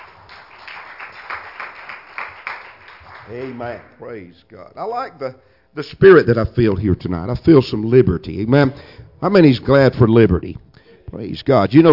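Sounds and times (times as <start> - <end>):
audience clapping hands in praise of the Lord: 0.0 - 4.0
speech: 3.3 - 11.9.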